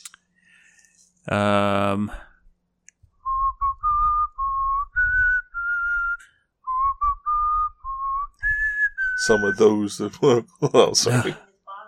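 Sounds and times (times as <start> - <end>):
speech: 1.2 - 2.3, 9.3 - 11.4
person whistling a short melodic tune: 3.2 - 9.7.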